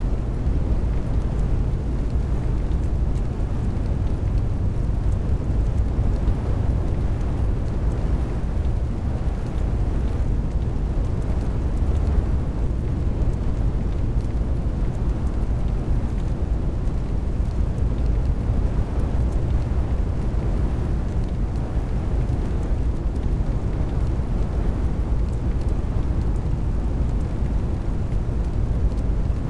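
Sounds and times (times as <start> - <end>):
fire in a dojo: 0.0 - 29.4.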